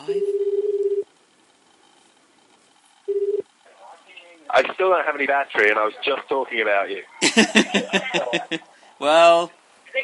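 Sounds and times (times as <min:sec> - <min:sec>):
speech: 0:00.0 - 0:00.3, 0:04.6 - 0:09.6
telephone ringing tone on a call: 0:00.2 - 0:01.0, 0:03.1 - 0:03.4
laughter: 0:07.2 - 0:08.7.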